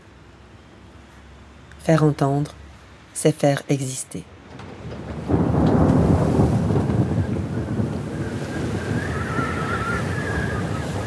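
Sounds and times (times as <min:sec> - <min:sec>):
speech: 0:01.8 - 0:02.6, 0:03.2 - 0:04.3
wind rushing over open water on a North Sea voyage: 0:04.3 - 0:11.0.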